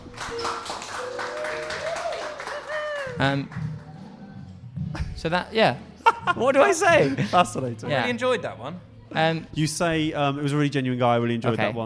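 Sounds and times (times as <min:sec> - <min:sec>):
crowd clapping: 0:00.0 - 0:04.2
speech: 0:03.2 - 0:03.8, 0:05.2 - 0:11.8.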